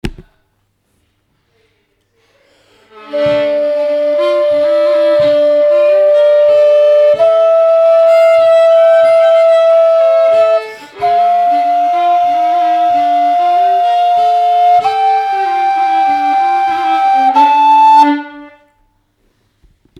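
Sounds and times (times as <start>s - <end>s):
wind section playing the ending: 2.9s - 18.8s.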